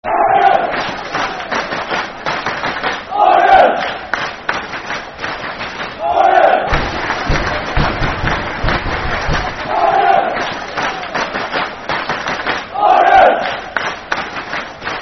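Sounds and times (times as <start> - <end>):
football crowd clapping: 0.6 - 15.0
football crowd chanting with clapping: 3.1 - 4.0, 6.0 - 8.4, 9.1 - 10.5, 12.7 - 13.6.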